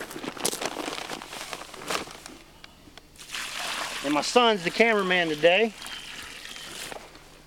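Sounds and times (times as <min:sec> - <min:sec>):
water pouring into a hole in the soil: 0:03.2 - 0:07.0
speech: 0:04.0 - 0:05.8.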